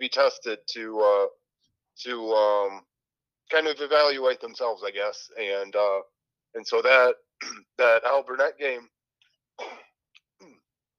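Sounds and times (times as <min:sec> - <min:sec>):
speech: 0:00.1 - 0:01.4, 0:02.0 - 0:02.9, 0:03.5 - 0:08.9, 0:09.6 - 0:10.6
throat clearing: 0:07.4 - 0:07.8, 0:09.6 - 0:10.6.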